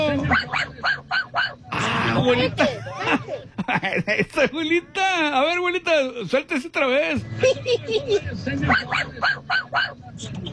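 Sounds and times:
small dog yapping with high sharp barks: 0.3 - 1.6, 8.7 - 10.0
laughter: 1.8 - 4.8, 7.3 - 9.0
speech: 2.2 - 10.5.

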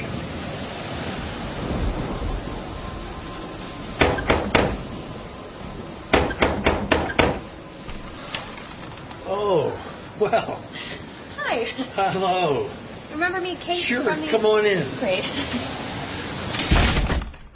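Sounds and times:
hiss: 0.0 - 17.2
knocking on a front door: 4.0 - 4.8, 6.1 - 7.5
speech: 10.3 - 10.9, 11.6 - 15.8.

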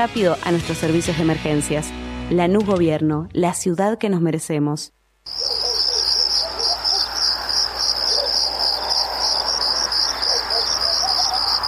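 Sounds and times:
speech: 0.0 - 5.5
faint low noise: 3.1 - 5.6
crickets chirping in a dense high-pitched trill: 5.3 - 11.6.

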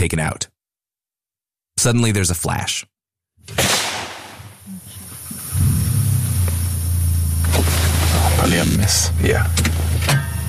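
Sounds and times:
speech: 0.0 - 0.5, 1.8 - 3.8, 8.5 - 10.3
steady low UTV engine rumble: 4.7 - 10.4.

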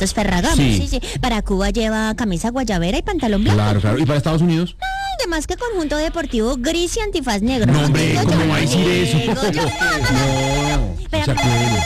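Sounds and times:
speech: 0.0 - 11.8
laughter: 7.6 - 10.7
melodic electronic telephone ringtone: 8.8 - 11.8.

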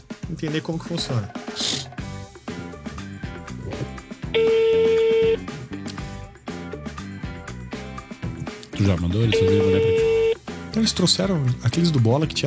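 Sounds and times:
busy music-like background: 0.0 - 12.4
speech: 0.3 - 1.8, 4.4 - 4.8, 8.8 - 10.2, 10.8 - 12.4
telephone ring tone: 4.4 - 5.4, 9.3 - 10.4.

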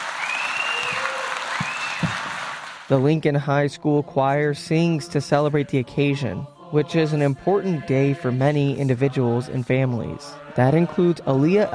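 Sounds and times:
theater audience applause: 0.0 - 2.9
speech: 2.9 - 11.7.

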